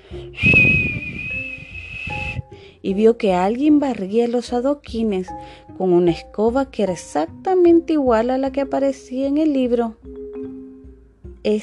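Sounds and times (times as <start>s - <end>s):
single long high whistle: 0.2s - 2.5s
speech: 2.9s - 10.2s, 11.4s - 11.6s.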